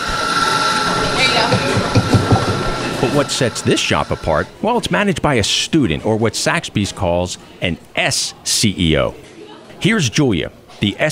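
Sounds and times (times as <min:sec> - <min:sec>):
steady machine hum: 0:00.0 - 0:04.8
indistinct murmur of voices in a coffee shop: 0:00.0 - 0:11.1
speech: 0:03.1 - 0:11.1.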